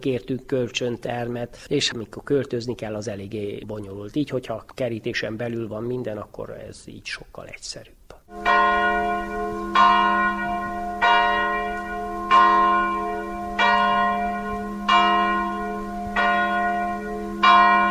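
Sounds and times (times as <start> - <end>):
speech: 0.0 - 8.5
church bells tolling from a tower: 8.3 - 17.8.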